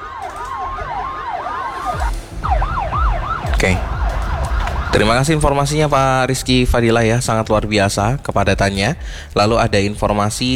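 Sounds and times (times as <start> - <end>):
ambulance siren in heavy slow-moving traffic: 0.0 - 7.0
low rumble of heavy slow-moving traffic: 0.0 - 10.5
police sirens escorting an ambulance, wailing and yelping: 0.0 - 10.5
speech: 3.6 - 3.9, 4.9 - 10.5.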